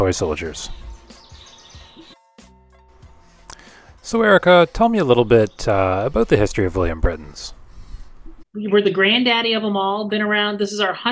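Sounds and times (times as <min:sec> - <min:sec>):
speech: 0:00.0 - 0:00.8, 0:04.1 - 0:07.6, 0:08.5 - 0:11.1
birds chirping: 0:00.0 - 0:02.2, 0:03.5 - 0:08.4.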